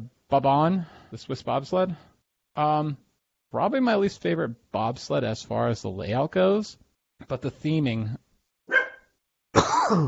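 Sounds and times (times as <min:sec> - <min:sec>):
speech: 0:00.3 - 0:08.2, 0:09.9 - 0:10.0
dog barking: 0:08.7 - 0:09.1.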